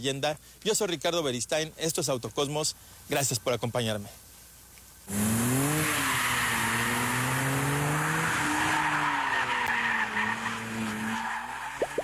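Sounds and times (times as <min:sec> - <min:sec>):
speech: 0:00.0 - 0:04.3, 0:05.1 - 0:05.5
Dodge Charger engine roaring while driving: 0:05.1 - 0:12.0
Dodge Charger tires squealing on curves: 0:05.1 - 0:12.0.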